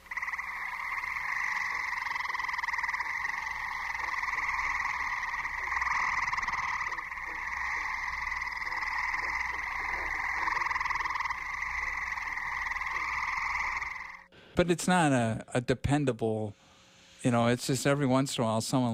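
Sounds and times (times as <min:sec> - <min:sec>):
gray tree frogs calling in a dense chorus of overlapping trills: 0:00.0 - 0:14.3
speech: 0:14.6 - 0:16.6, 0:17.2 - 0:18.9.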